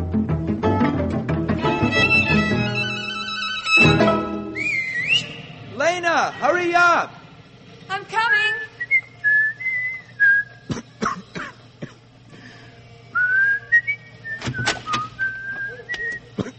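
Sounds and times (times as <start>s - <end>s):
low steady hum: 0.0s - 16.5s
person whistling a simple wavering tune: 3.7s - 5.6s, 8.8s - 10.6s, 13.1s - 16.3s
speech: 6.3s - 7.2s
person coughing: 10.7s - 12.0s, 16.3s - 16.5s.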